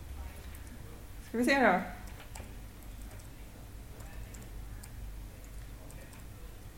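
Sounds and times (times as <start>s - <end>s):
steady low hum: 0.0s - 6.7s
speech: 1.3s - 2.0s
typing on a computer keyboard: 2.0s - 6.7s.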